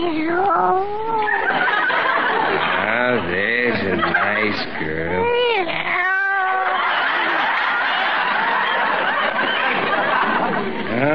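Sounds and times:
speech: 0.0s - 1.0s, 4.5s - 5.9s
female cat meowing: 0.0s - 1.5s, 5.2s - 6.9s
laughter: 1.1s - 5.3s, 6.4s - 11.1s.

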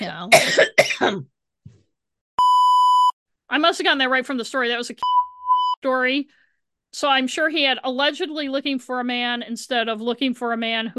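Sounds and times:
speech: 0.0s - 1.3s, 3.5s - 5.2s, 5.8s - 10.9s
person with a cold coughing: 0.3s - 1.3s
steady electronic beep tone: 2.4s - 3.2s, 5.0s - 5.8s.

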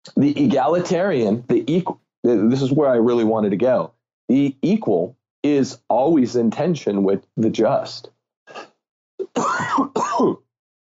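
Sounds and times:
speech: 0.1s - 8.7s, 9.3s - 10.4s
person coughing and clearing their throat: 8.5s - 10.4s.

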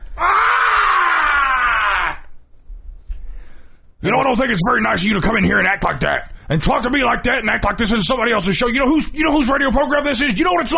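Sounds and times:
man screaming imitating an enraged ranting voice: 0.2s - 2.3s
speech: 4.0s - 10.7s.

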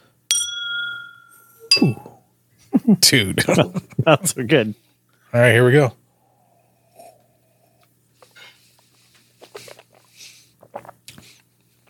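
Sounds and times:
two glasses of rum clinking in a toast: 0.3s - 2.2s
speech: 1.8s - 2.1s, 2.9s - 6.0s.

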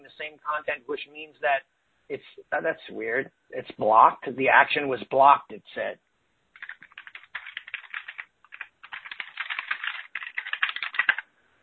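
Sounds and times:
speech: 0.1s - 6.1s
typing on a computer keyboard: 6.6s - 11.3s.

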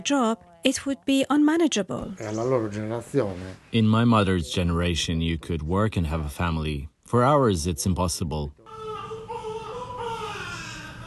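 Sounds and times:
speech: 0.0s - 8.7s
newborn babies crying in a maternity ward: 8.7s - 11.0s.

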